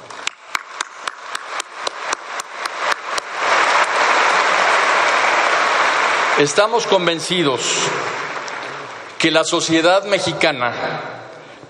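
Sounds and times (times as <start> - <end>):
audience applause from a large crowd: 0.0 - 9.6
speech: 6.4 - 8.2, 9.2 - 11.1.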